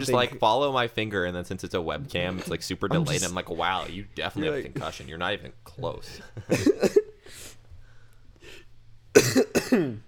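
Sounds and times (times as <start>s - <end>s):
speech: 0.0s - 7.5s, 9.2s - 10.0s
person coughing: 6.4s - 7.2s, 9.2s - 10.0s
breathy pause between coughs: 7.2s - 8.7s.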